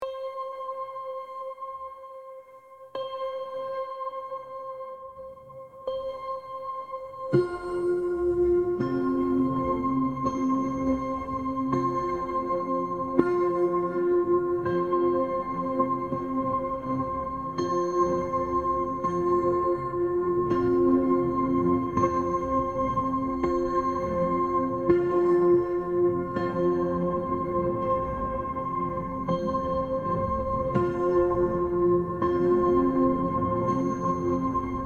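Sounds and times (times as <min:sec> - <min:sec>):
528 Hz 741 Hz and 963 Hz tones: 0:00.0 - 0:34.8.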